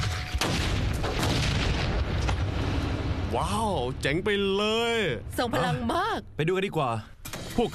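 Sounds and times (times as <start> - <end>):
hand grenade set off by remote in a blast-wave test exploding: 0.0 - 2.6
scattered debris pops: 0.0 - 2.8
speech: 3.3 - 7.7.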